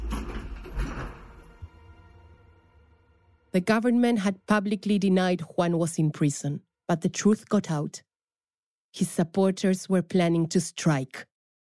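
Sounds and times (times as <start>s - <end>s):
elevator doors sliding shut: 0.0s - 1.8s
speech: 3.6s - 8.1s, 8.9s - 11.3s.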